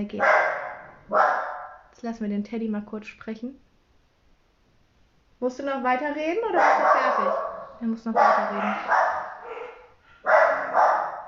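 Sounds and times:
speech: 0.0 - 0.4, 1.1 - 3.6, 5.4 - 9.0
dogs barking: 0.1 - 1.9, 6.5 - 11.2.

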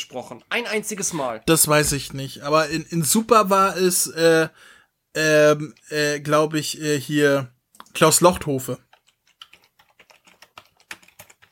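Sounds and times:
speech: 0.0 - 8.9
typing on a computer keyboard: 8.8 - 11.5.

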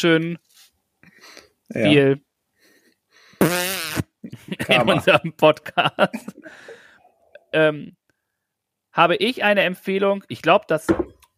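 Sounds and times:
speech: 0.0 - 0.5, 1.3 - 2.3, 4.4 - 6.8, 7.5 - 8.0, 9.0 - 11.1
fart: 3.4 - 4.2
laughter: 4.3 - 6.7.

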